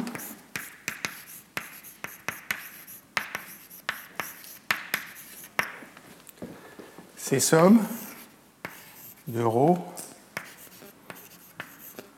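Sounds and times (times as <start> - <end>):
writing on a board during a lecture: 0.0 - 5.7, 8.0 - 9.3, 10.4 - 12.1
speech: 7.3 - 8.0, 9.3 - 10.0.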